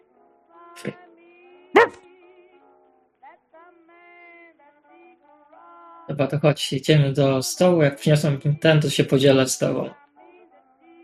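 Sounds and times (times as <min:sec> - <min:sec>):
speech: 0:00.8 - 0:01.0, 0:06.1 - 0:10.0
dog barking during petting: 0:01.8 - 0:02.0.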